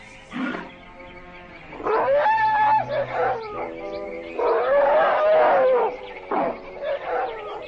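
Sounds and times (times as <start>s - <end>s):
playful elephants bathing in water trumpeting and bellowing: 1.8s - 3.8s, 4.4s - 7.6s.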